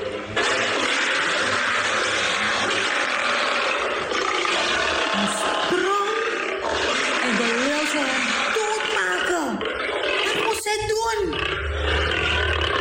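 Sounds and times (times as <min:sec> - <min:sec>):
lion roaring and growling: 0:00.0 - 0:12.7.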